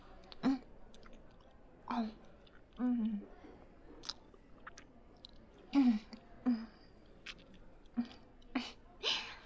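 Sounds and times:
chewing while eating a meal: 0.2 - 3.3, 3.9 - 6.3, 7.0 - 8.5.

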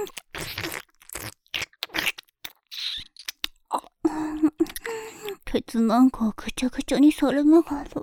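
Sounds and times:
wet mouth sounds of nibbling and licking ears: 0.0 - 4.0
speech: 5.6 - 8.0.

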